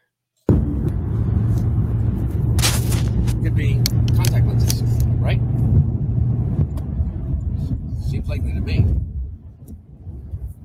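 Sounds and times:
low road rumble inside a moving car: 0.5s - 10.6s
hiss of tire or wind noise: 1.1s - 9.2s.

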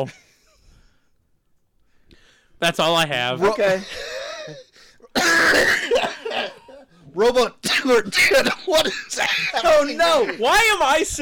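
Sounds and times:
speech: 0.0s - 0.3s, 2.6s - 6.6s, 7.2s - 11.2s
person coughing while eating pretzels: 3.8s - 6.9s.

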